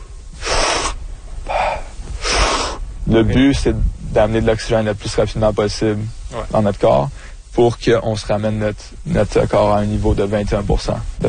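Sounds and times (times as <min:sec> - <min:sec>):
forceful deep breaths in a recovery-breathing exercise: 0:00.0 - 0:03.0, 0:07.1 - 0:07.5
speech: 0:03.1 - 0:11.2.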